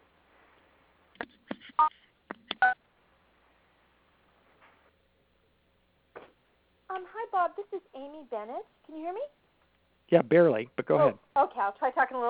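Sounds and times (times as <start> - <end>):
telephone keypad tones pressing star and six to unmute on a conference call: 2.6 - 2.8
speech: 7.0 - 9.4, 10.1 - 12.2.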